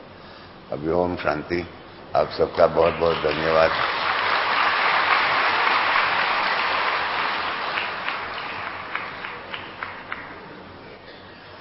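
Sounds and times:
speech: 0.7 - 4.1
audience crowd applauding: 2.6 - 10.8.

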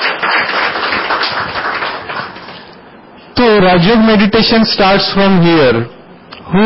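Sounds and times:
audience applause at a meditation talk: 0.0 - 2.8
speech: 3.6 - 6.6.

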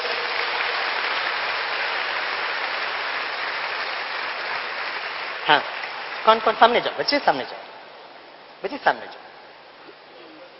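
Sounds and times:
sizable crowd applauding children: 0.0 - 7.6
speech: 5.5 - 7.7, 8.6 - 9.2.

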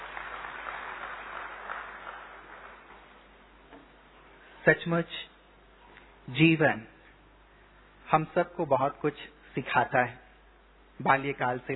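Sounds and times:
audience clapping: 0.0 - 3.3
speech: 4.6 - 5.3, 6.3 - 6.9, 8.1 - 10.2, 11.0 - 11.7.

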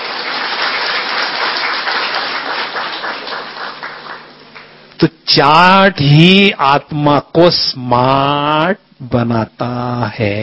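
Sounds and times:
audience applauding a speaker: 0.0 - 4.7
speech: 5.0 - 10.4.

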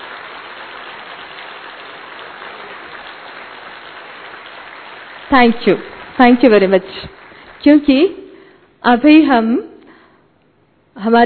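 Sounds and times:
crowd clapping: 0.0 - 8.5
speech: 5.3 - 8.2, 8.8 - 9.7, 11.0 - 11.2.

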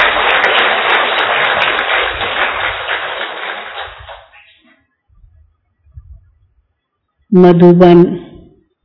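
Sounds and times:
large crowd clapping loudly: 0.0 - 4.6
faint low rumbles: 5.1 - 8.8
speech: 7.3 - 8.2.

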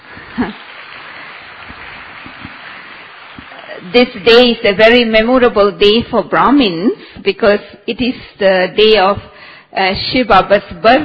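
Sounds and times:
audience clapping in welcome at a celebration: 0.0 - 3.8
speech: 0.4 - 0.6, 3.9 - 11.0.

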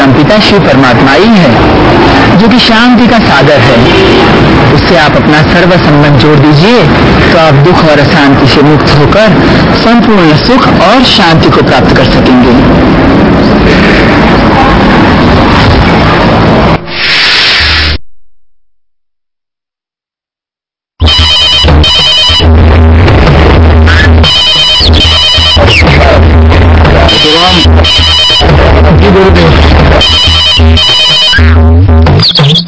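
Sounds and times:
dense noisy opening: 0.0 - 18.2, 21.0 - 32.6
speech: 0.3 - 14.8
telephone ringing loudly in bright bursts: 21.0 - 22.5, 24.2 - 25.8, 27.1 - 28.6, 30.0 - 31.4.

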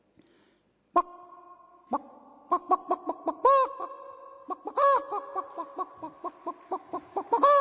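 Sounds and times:
hen clucking and cackling: 2.5 - 3.9, 4.5 - 7.5.

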